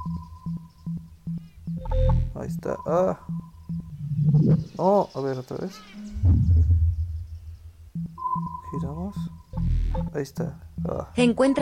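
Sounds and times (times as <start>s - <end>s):
electronic beeps like a Morse code beacon in an audio game: 0.0s - 5.0s, 8.0s - 11.6s
speech: 2.4s - 3.4s, 4.4s - 6.8s, 8.7s - 9.4s, 10.1s - 11.6s.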